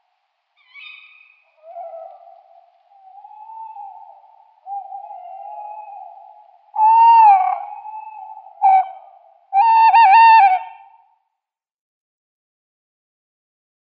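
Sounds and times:
tawny owls exchanging hooting calls in pair display: 0:00.6 - 0:11.0.

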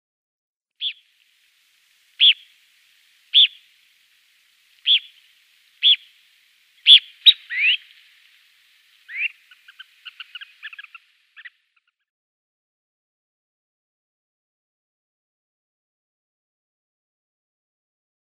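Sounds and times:
Grey Phalarope calls: 0:00.8 - 0:01.2, 0:02.0 - 0:12.0.

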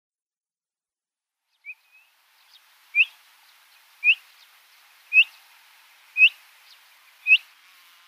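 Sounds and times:
black-shouldered kite giving high whistled calls: 0:02.9 - 0:03.2, 0:04.0 - 0:04.2, 0:05.1 - 0:05.4, 0:06.2 - 0:06.4, 0:07.2 - 0:07.5.

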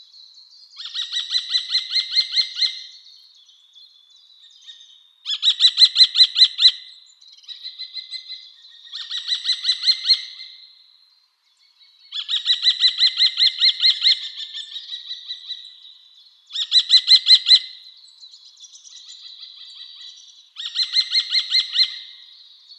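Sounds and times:
Eurasian kestrel giving high sharp notes: 0:00.8 - 0:03.1, 0:04.6 - 0:10.7, 0:12.0 - 0:22.7.

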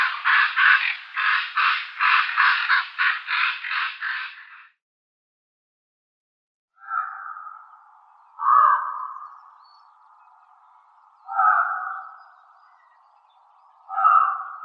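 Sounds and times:
common raven giving harsh grating rattling notes: 0:00.0 - 0:04.8, 0:06.8 - 0:09.6, 0:11.1 - 0:13.0, 0:13.8 - 0:14.6.

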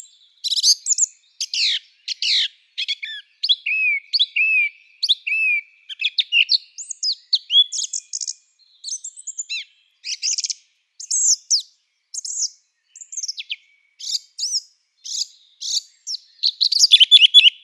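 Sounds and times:
song thrush song: 0:00.0 - 0:17.6.

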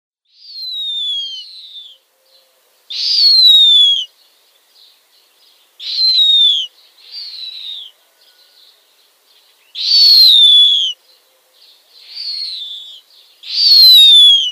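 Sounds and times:
snowy owl downy young screeching: 0:00.4 - 0:02.0, 0:02.9 - 0:04.1, 0:05.8 - 0:08.0, 0:09.8 - 0:11.0, 0:12.0 - 0:14.5.

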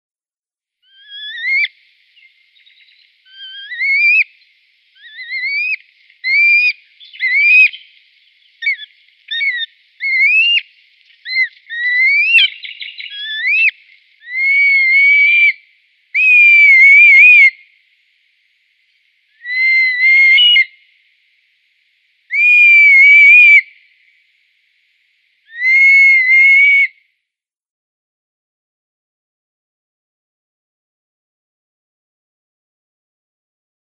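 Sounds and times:
Red Kite nestling calling: 0:01.0 - 0:01.7, 0:02.6 - 0:04.3, 0:05.0 - 0:07.9, 0:08.5 - 0:15.6, 0:16.2 - 0:17.5, 0:19.4 - 0:20.7, 0:22.3 - 0:23.6, 0:25.5 - 0:26.9.

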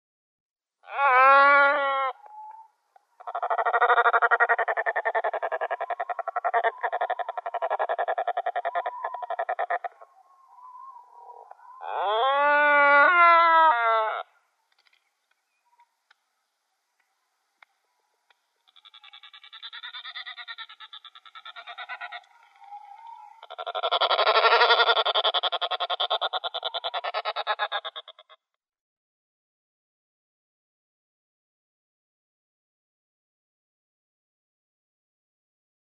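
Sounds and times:
Black-browed Albatross calling: 0:00.8 - 0:02.6, 0:03.2 - 0:14.3, 0:18.6 - 0:28.4.

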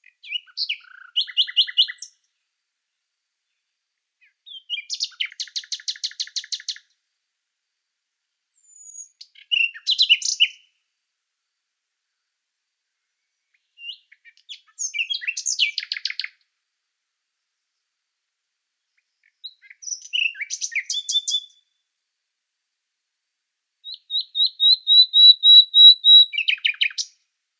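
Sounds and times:
Common nightingale singing sharp high notes and rapid rattling trills: 0:00.0 - 0:02.2, 0:04.2 - 0:06.9, 0:08.6 - 0:10.6, 0:13.4 - 0:16.4, 0:19.0 - 0:21.6, 0:23.8 - 0:27.2.

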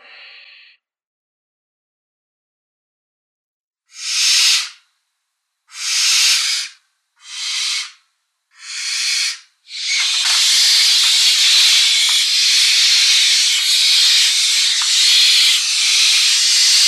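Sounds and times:
downy barn owl nestlings hissing: 0:03.9 - 0:04.8, 0:05.7 - 0:16.8.

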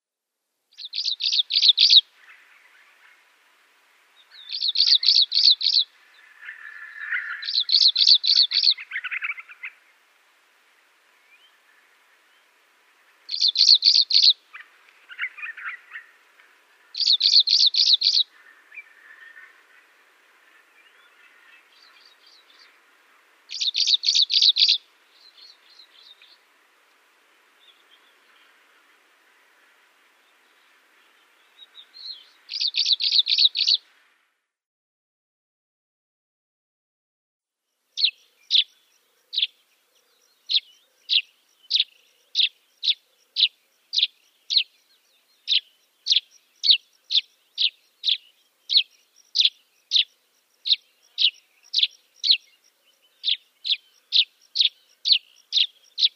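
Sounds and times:
Dead Sea sparrow singing: 0:00.7 - 0:02.5, 0:04.3 - 0:09.8, 0:13.3 - 0:16.2, 0:16.8 - 0:19.6, 0:23.5 - 0:26.4, 0:30.2 - 0:33.8, 0:38.0 - 0:56.1.

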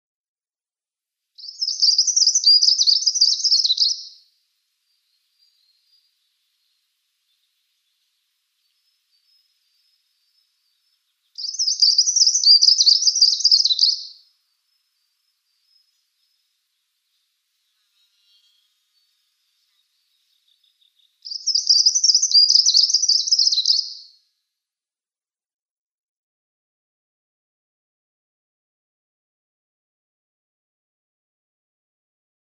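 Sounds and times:
Two-barred Warbler singing: 0:01.4 - 0:24.2.

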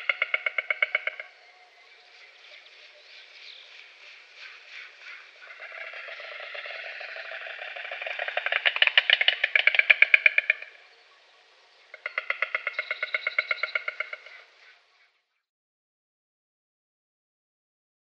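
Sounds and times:
white stork clattering its bill: 0:00.0 - 0:01.3, 0:03.8 - 0:10.8, 0:12.0 - 0:14.4.

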